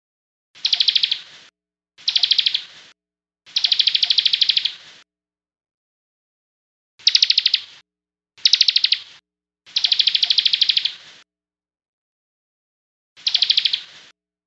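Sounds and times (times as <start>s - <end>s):
songbird singing rattling trills of rapid repeated notes: 0.6s - 1.4s, 2.0s - 2.8s, 3.5s - 4.8s, 7.0s - 7.8s, 8.4s - 11.0s, 13.2s - 14.1s.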